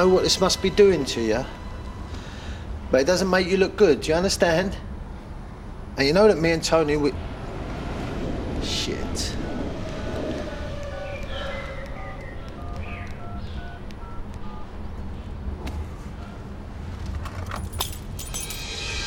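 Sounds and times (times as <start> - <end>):
speech: 0.0 - 1.6, 2.9 - 4.9, 6.0 - 7.3
steady low engine-like rumble: 0.0 - 18.9
bunch of car keys dropping into a lap and jangling: 17.2 - 18.7
bright metallic clinks: 17.3 - 18.9.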